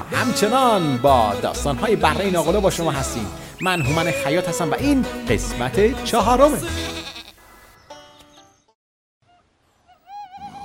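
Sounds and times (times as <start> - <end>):
sheep bleating in a barn: 0.0 - 7.4
speech: 0.1 - 7.0.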